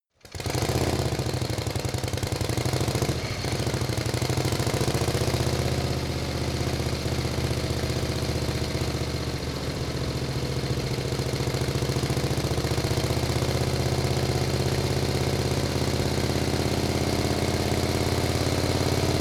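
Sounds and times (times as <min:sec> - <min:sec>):
Harley motorcycle driving at medium speed: 0:00.2 - 0:19.1.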